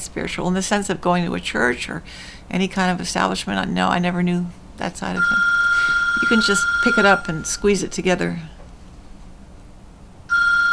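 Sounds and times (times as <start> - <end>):
speech: 0.2 - 5.6, 6.2 - 8.6
cell phone ringing on a table: 5.2 - 7.7, 10.3 - 10.7.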